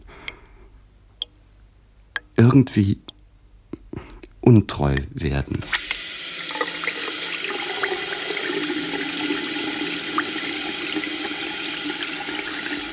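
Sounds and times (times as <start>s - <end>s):
speech: 2.4s - 3.1s, 4.5s - 5.8s
water running from a tap or shower: 5.7s - 12.9s.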